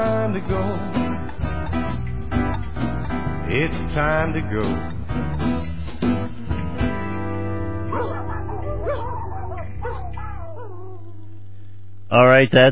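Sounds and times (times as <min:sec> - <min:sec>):
speech: 0:00.0 - 0:01.0, 0:03.5 - 0:05.7, 0:12.1 - 0:12.7
musical backing: 0:00.0 - 0:11.5
dog barking: 0:07.9 - 0:10.9
dog whining and whimpering: 0:07.9 - 0:11.4.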